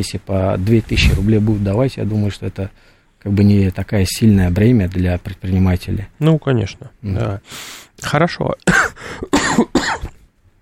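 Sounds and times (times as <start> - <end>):
speech: 0.0 - 10.0
person coughing harshly: 8.7 - 10.2.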